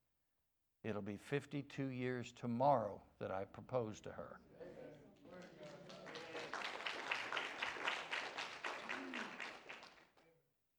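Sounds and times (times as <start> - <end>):
speech: 0.8 - 4.8
audience applause: 5.3 - 10.2.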